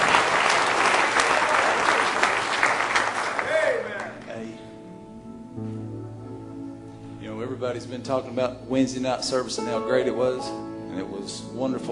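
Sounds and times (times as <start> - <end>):
large audience clapping and cheering: 0.0 - 4.3
sustained organ or keyboard chord: 0.0 - 11.9
speech: 7.7 - 11.9.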